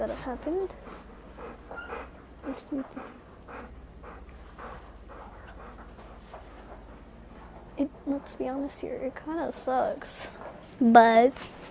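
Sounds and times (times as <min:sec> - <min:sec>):
speech: 0:00.0 - 0:01.0, 0:02.4 - 0:03.8, 0:07.8 - 0:11.6
dog snuffly breathing and panting: 0:00.0 - 0:08.4
dog whimpering: 0:01.7 - 0:03.7.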